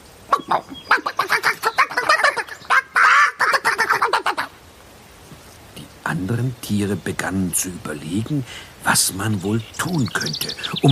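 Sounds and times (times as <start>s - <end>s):
chickens squabbling with squawks and clucks: 0.2s - 4.7s
speech: 0.5s - 1.0s, 6.1s - 10.8s.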